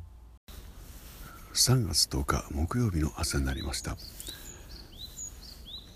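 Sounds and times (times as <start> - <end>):
several birds chirping and calling in a park: 1.2 - 5.9
speech: 1.5 - 4.2.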